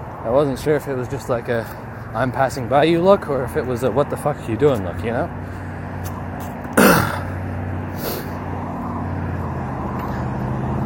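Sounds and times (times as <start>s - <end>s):
street traffic rumbling: 0.0s - 10.8s
speech: 0.2s - 6.2s
vehicle swooshing past on a street: 7.4s - 10.8s.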